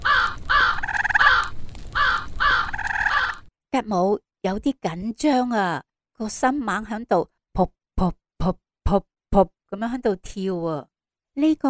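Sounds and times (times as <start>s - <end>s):
large black crow cawing: 0.0s - 3.4s
speech: 3.8s - 11.6s.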